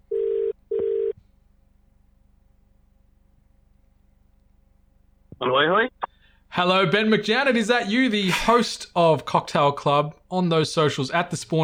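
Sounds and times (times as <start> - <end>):
telephone ringback tone through a call line: 0.1 - 1.1
speech: 6.6 - 11.6.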